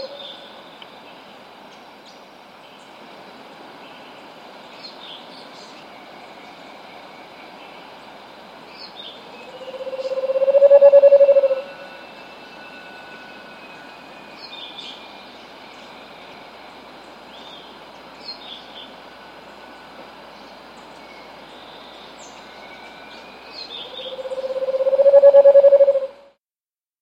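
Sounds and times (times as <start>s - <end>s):
Scaled Antpitta in S. America: 9.2s - 26.2s.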